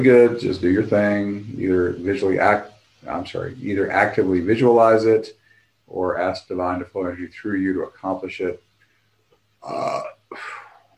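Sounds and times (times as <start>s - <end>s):
speech: 0.0s - 8.6s, 9.6s - 10.6s
shaman belching during an energy-healing session: 9.6s - 10.8s.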